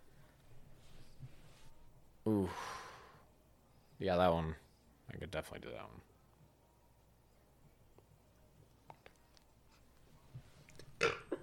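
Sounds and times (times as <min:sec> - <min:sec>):
speech: 0:04.0 - 0:06.1
short low burp: 0:11.0 - 0:11.4.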